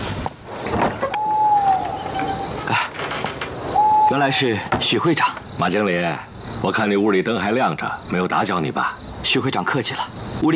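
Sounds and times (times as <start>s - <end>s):
long thin creak of a door hinge: 0.7s - 5.5s
door handle clatter: 1.8s - 3.7s
soft thud of a door settling: 1.8s - 5.5s
speech: 4.1s - 10.5s.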